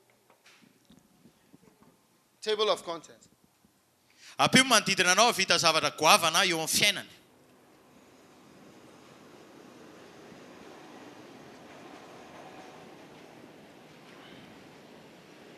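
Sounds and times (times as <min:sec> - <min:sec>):
speech: 0:02.4 - 0:03.3, 0:04.4 - 0:07.2
wheels clattering on rails: 0:07.5 - 0:15.5
train rumbling past: 0:07.6 - 0:15.5.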